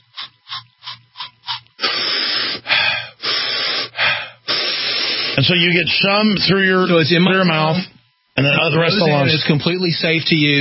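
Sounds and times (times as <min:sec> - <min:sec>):
aerosol spray pumped in short hissing puffs: 0:01.4 - 0:03.9, 0:04.5 - 0:05.4
quick breaths: 0:01.8 - 0:05.4
speech: 0:05.4 - 0:10.5.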